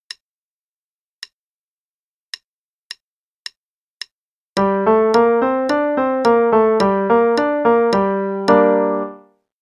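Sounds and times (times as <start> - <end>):
five-finger pattern in G minor at 108 quarter notes per minute: 4.6 - 9.2.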